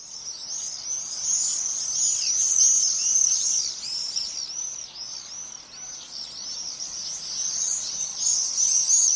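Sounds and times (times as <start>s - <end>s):
flock of birds screeching and calling overhead in summer: 0.0s - 9.1s.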